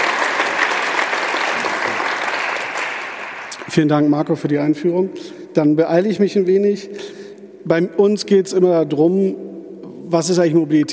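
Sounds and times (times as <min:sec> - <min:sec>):
audience applauding: 0:00.0 - 0:03.8
speech: 0:03.7 - 0:09.5, 0:10.1 - 0:10.9.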